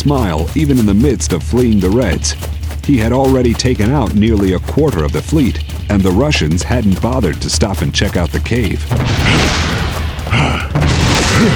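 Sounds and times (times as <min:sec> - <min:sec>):
speech: 0:00.0 - 0:11.5
grenade explosion in a wooded area: 0:08.9 - 0:11.5.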